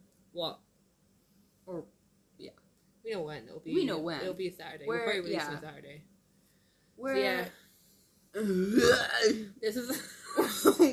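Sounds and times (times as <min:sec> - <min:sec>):
speech: 0:00.4 - 0:00.7, 0:01.6 - 0:06.1, 0:07.0 - 0:07.6, 0:08.3 - 0:10.9
person burping: 0:08.4 - 0:09.5.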